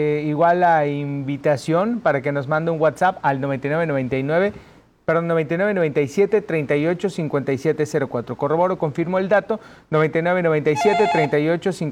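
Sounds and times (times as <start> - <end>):
speech: 0.0 - 11.9
electronic ringtone of an incoming telephone call: 10.8 - 11.4.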